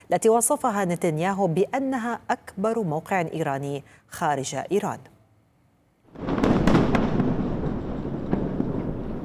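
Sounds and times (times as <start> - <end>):
speech: 0.1 - 5.1
massive explosion: 6.1 - 9.2.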